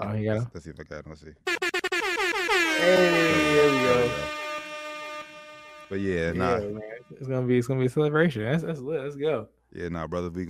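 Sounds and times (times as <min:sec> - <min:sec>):
speech: 0:00.0 - 0:01.6, 0:02.8 - 0:04.4, 0:05.9 - 0:10.4
brassy air horn blaring: 0:01.5 - 0:07.2.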